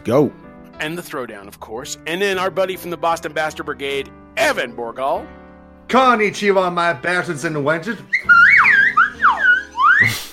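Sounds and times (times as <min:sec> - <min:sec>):
speech: 0:00.0 - 0:08.4
slide whistle swooping up and down: 0:08.1 - 0:10.3.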